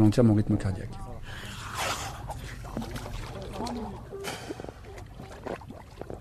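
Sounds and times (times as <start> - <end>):
speech: 0.0 - 1.9
water sloshing and splashing against a boat hull: 1.3 - 6.1.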